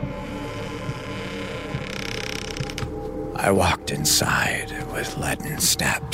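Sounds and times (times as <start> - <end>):
door creaking open: 0.0 - 3.2
low hum: 0.0 - 5.5
speech: 3.4 - 6.1.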